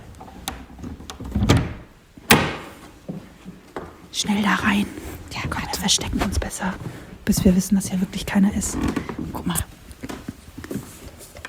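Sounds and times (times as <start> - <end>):
door opening: 0.0 - 2.9
door latch clicks: 0.5 - 2.8
door bang: 1.6 - 2.9
speech: 4.2 - 9.7.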